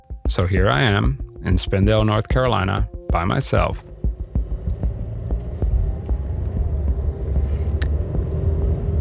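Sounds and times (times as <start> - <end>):
speech: 0.3 - 3.9
road hum from a driving car: 1.2 - 9.0
car driving on a road in Spindale, North Carolina: 2.3 - 9.0.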